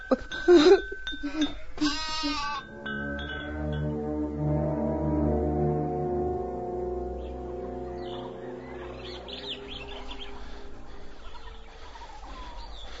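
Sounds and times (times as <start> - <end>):
speech: 0.1 - 0.9
sheep bleating: 1.8 - 2.6
steady sustained droning tone: 2.7 - 12.9.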